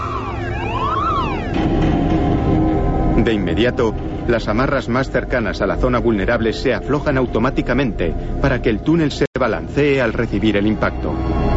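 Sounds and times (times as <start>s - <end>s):
warbling alarm tones at a central control station triggered by motion sensors: 0.0s - 7.8s
loud steady rumble: 0.0s - 11.5s
speech: 3.2s - 11.5s.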